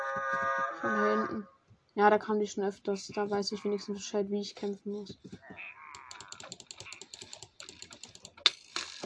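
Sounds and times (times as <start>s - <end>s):
speech: 0.2s - 5.8s
computer keyboard keys pressed rapidly while playing a video game: 6.0s - 9.0s.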